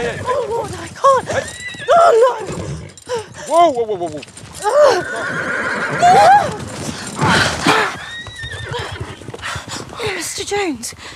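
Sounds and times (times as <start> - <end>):
horse hooves clattering: 0.0 - 11.1
horse neighing loudly: 1.2 - 3.3, 4.6 - 9.2
speech: 3.5 - 6.6, 10.5 - 11.1.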